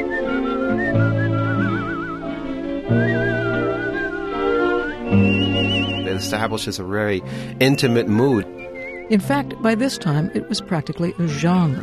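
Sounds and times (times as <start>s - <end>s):
man whistling a smooth sustained melody with vibrato: 0.0s - 9.1s
steady instrumental backing music: 0.0s - 11.8s
speech: 6.2s - 8.5s, 9.1s - 11.8s.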